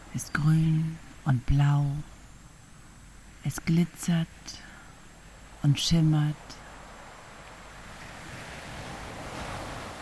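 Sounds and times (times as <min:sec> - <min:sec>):
speech: 0:00.1 - 0:02.1, 0:03.4 - 0:04.7, 0:05.6 - 0:06.6
ocean surf: 0:06.7 - 0:10.0.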